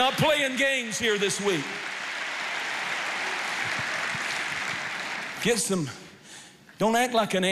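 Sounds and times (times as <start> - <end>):
speech: 0.0 - 2.0, 5.4 - 6.0, 6.8 - 7.5
audience clapping: 0.0 - 6.2.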